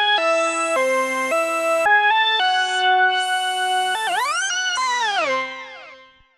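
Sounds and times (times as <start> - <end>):
synth lead from factory patch: 0.1 - 6.2.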